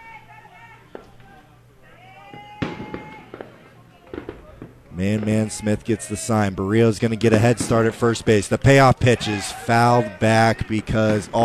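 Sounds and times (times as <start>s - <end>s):
crowd murmur with faint voices: 0.0s - 11.4s
fireworks bursts: 2.3s - 11.4s
speech: 5.0s - 11.4s.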